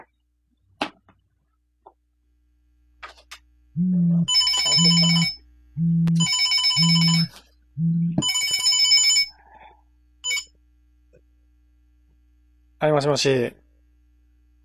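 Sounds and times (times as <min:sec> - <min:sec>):
mobile phone low buzzing tone: 0:03.8 - 0:08.4
mobile phone ringtone for an incoming call: 0:04.1 - 0:07.4, 0:08.1 - 0:09.4, 0:10.2 - 0:10.5
speech: 0:12.9 - 0:13.6.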